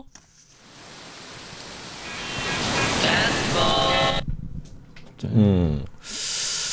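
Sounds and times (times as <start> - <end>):
ocean waves crashing: 0.6 - 4.5
speech: 5.2 - 6.2.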